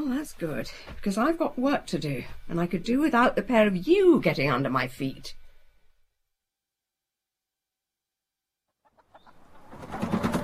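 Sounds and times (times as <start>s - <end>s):
speech: 0.2s - 5.4s
chickens clucking and squawking: 8.8s - 10.4s.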